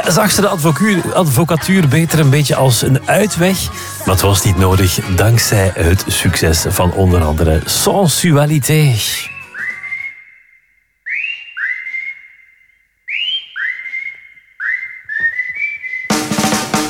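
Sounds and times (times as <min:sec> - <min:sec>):
broadband music or noise: 0:00.0 - 0:08.1, 0:09.0 - 0:09.9, 0:16.1 - 0:16.8
speech: 0:00.0 - 0:09.3
person whistling a short melodic tune: 0:09.1 - 0:10.4, 0:11.1 - 0:12.4, 0:13.1 - 0:16.3.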